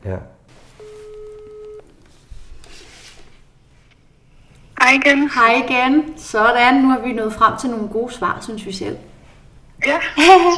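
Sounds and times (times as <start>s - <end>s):
speech: 0.0s - 0.3s, 4.9s - 9.1s, 9.8s - 10.5s
rustling handling noise: 0.5s - 4.0s
electronic telephone tone during a phone call: 0.8s - 2.0s.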